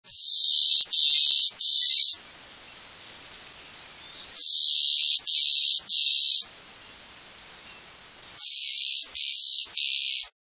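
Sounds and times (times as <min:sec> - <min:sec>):
Clay-colored sparrow: 0:00.1 - 0:02.2, 0:03.2 - 0:06.5, 0:07.6 - 0:10.3.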